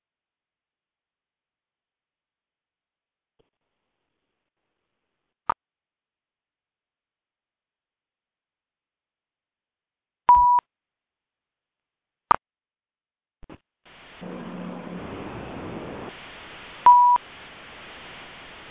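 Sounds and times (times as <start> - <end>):
electronic phone keypad beeps: 10.3 - 10.6, 16.8 - 17.2
phone line noise: 13.4 - 18.6.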